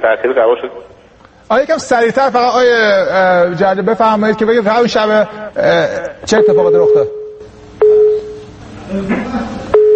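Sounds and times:
speech: 0:00.0 - 0:07.2, 0:08.9 - 0:09.6
phone busy tone after a call is cut off: 0:06.3 - 0:08.6, 0:09.7 - 0:09.9.

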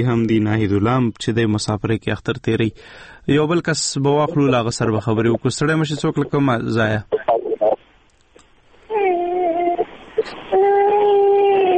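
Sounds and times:
speech: 0:00.0 - 0:07.4
child crying over a phone call: 0:08.9 - 0:11.7.

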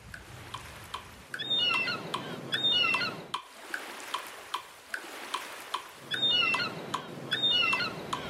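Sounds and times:
ocean waves washing in: 0:00.0 - 0:08.2
steady faint ticking: 0:00.0 - 0:08.2
seagull calling: 0:01.3 - 0:03.4, 0:05.9 - 0:08.2.

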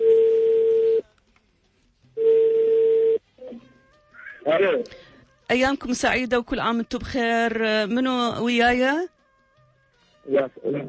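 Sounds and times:
outgoing telephone call ringback tones: 0:00.0 - 0:01.0, 0:02.2 - 0:03.2
speech: 0:04.6 - 0:09.1, 0:10.3 - 0:10.8.

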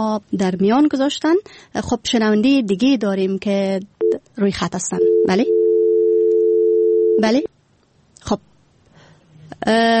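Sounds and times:
speech: 0:00.0 - 0:05.6, 0:07.2 - 0:07.5, 0:08.2 - 0:08.5, 0:09.6 - 0:09.9
telephone dial tone after a dropped call: 0:05.1 - 0:07.2.

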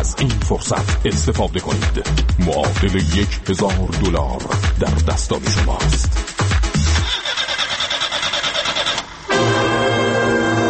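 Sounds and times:
speech: 0:00.0 - 0:06.5
Pride car engine starting and idling: 0:05.8 - 0:10.6.

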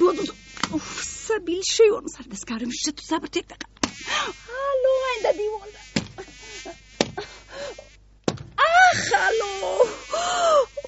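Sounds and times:
housefly buzzing: 0:00.0 - 0:01.4, 0:03.8 - 0:08.0, 0:08.9 - 0:10.8
speech: 0:01.5 - 0:05.8
sharp smacks: 0:03.8 - 0:04.0, 0:06.0 - 0:06.2.

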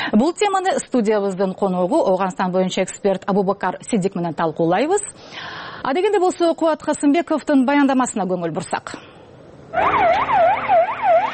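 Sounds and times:
speech: 0:00.2 - 0:09.1, 0:09.7 - 0:10.8
ambulance siren wailing as the vehicle rushes to an attack scene in Afghanistan: 0:09.7 - 0:11.3.

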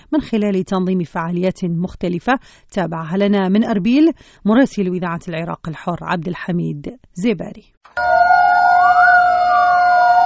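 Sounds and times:
speech: 0:00.1 - 0:08.4
air raid sirens wailing during a commemoration: 0:08.0 - 0:10.2.

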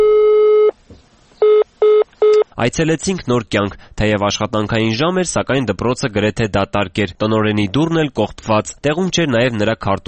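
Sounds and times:
telephone busy-signal beeps: 0:00.0 - 0:00.7
telephone ring tone of an unanswered call: 0:00.0 - 0:00.8, 0:01.4 - 0:02.5
speech: 0:02.6 - 0:10.0.

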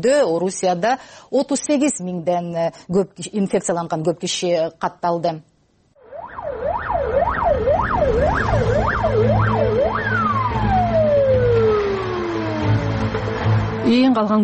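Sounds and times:
speech: 0:00.0 - 0:05.5, 0:13.9 - 0:14.4
ambulance sirens wailing through city streets: 0:06.0 - 0:14.0.

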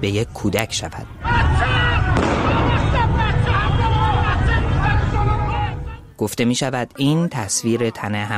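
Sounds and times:
speech: 0:00.0 - 0:03.3, 0:06.2 - 0:08.3
large crowd shouting and talking outdoors: 0:01.0 - 0:06.2
single sharp gunshot in a street protest: 0:02.2 - 0:03.0.

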